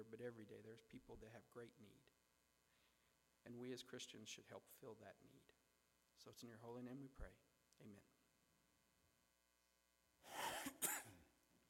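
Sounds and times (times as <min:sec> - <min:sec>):
speech: 0:00.0 - 0:02.2, 0:03.4 - 0:05.6, 0:06.2 - 0:08.2
person coughing: 0:10.3 - 0:11.3.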